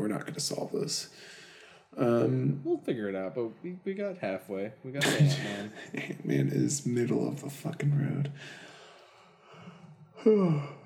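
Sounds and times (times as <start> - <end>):
speech: 0.1 - 8.7, 10.2 - 10.8
laughter: 5.0 - 7.5
person yawning: 10.2 - 10.8.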